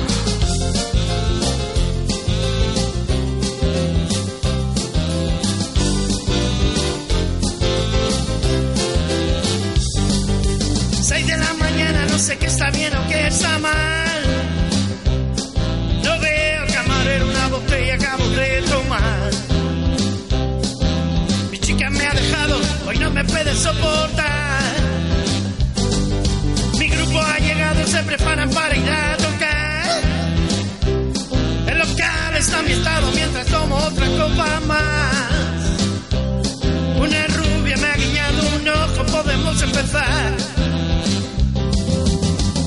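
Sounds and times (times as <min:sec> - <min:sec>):
loud full-band rock song: 0:00.0 - 0:42.6
melodic vocal line: 0:10.9 - 0:19.7, 0:21.5 - 0:25.6, 0:26.6 - 0:41.1.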